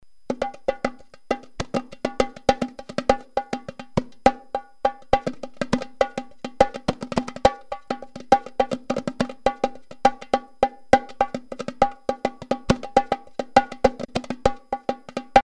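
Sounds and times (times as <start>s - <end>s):
Tamburu drum playing: 0.3s - 15.4s.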